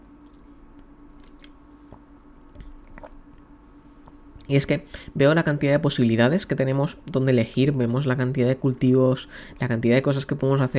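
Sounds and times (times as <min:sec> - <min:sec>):
low steady hum: 0:00.0 - 0:10.7
soft wet mouth clicks: 0:00.2 - 0:02.0, 0:02.6 - 0:03.3
person sipping water: 0:00.2 - 0:04.5
person gulping: 0:01.2 - 0:03.4
speech: 0:04.5 - 0:10.7.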